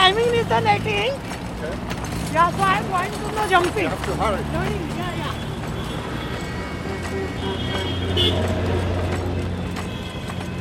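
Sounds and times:
indistinct voices on a busy Mumbai city street: 0.0 - 9.4
traffic roar and engine rumble on a busy Mumbai city street: 0.0 - 10.5
car horns on a busy Mumbai city street: 2.4 - 10.5.

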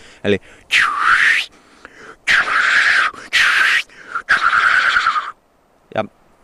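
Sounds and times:
speech: 0.2 - 1.5, 6.0 - 6.2
person imitating black grouse challenge hiss call: 0.7 - 5.4.

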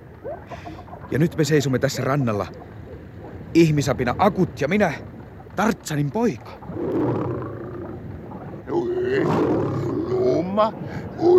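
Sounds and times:
speech: 0.5 - 2.7, 3.6 - 7.2, 10.6 - 11.3
lion roaring: 6.6 - 8.0, 8.7 - 10.5.

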